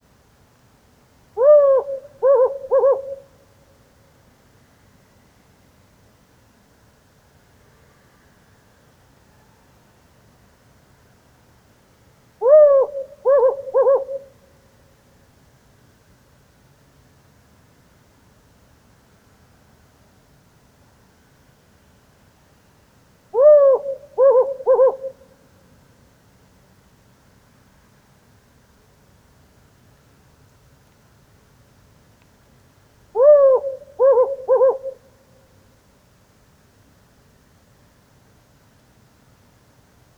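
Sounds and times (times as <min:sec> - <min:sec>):
male Hume's owl hooting during lunar eclipse: 0:01.4 - 0:03.4, 0:12.4 - 0:14.4, 0:23.4 - 0:25.3, 0:33.2 - 0:35.2.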